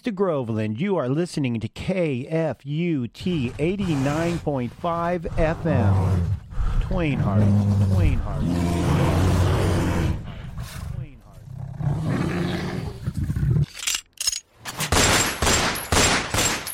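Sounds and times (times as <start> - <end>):
speech: 0.0 - 9.4
rough roaring din: 5.0 - 13.6
rapid fusillade of loud sharp gunshots: 14.9 - 16.7.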